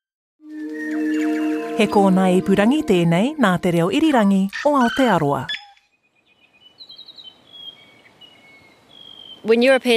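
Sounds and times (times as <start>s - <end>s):
mohua yellowhead New Zealand songbird singing: 0.4s - 2.2s, 4.9s - 9.5s
speech: 1.8s - 5.6s, 9.4s - 9.9s
soft hiss: 6.2s - 9.9s.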